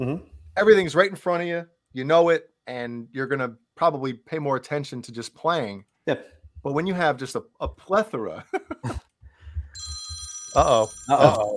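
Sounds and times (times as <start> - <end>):
speech: 0.0 - 9.0, 10.6 - 11.5
soft low thumps: 8.8 - 10.2
telephone ringing for an incoming call to a live radio show: 9.7 - 11.5.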